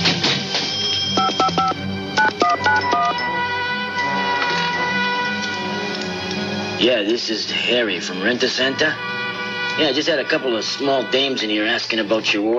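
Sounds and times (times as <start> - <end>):
music: 0.0 - 12.5
telephone keypad DTMF dialing tones: 0.8 - 3.2
speech: 6.8 - 9.1, 9.8 - 12.5.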